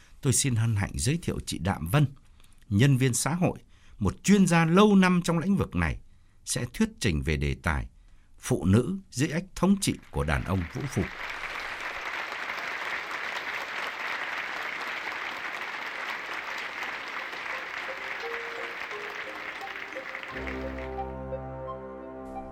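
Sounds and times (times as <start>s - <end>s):
speech: 0.2s - 11.4s
thunderous applause from an audience at a talk: 10.4s - 21.2s.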